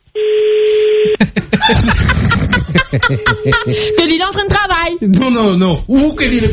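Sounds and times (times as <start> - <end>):
steady ringback tone over a phone line: 0.2 - 1.2, 3.1 - 4.4
laughter: 1.1 - 3.9
speech: 2.8 - 4.4, 5.0 - 6.5.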